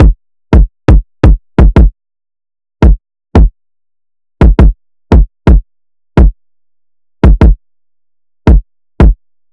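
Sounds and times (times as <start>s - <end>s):
kick drum loop: 0.0s - 1.9s, 2.8s - 3.5s, 4.4s - 5.6s, 6.2s - 6.4s, 7.2s - 7.6s, 8.5s - 9.2s.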